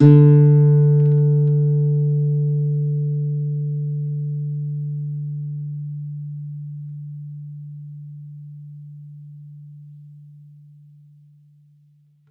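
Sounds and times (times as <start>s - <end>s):
campfire nylon guitar D3 note played softly: 0.0s - 8.3s.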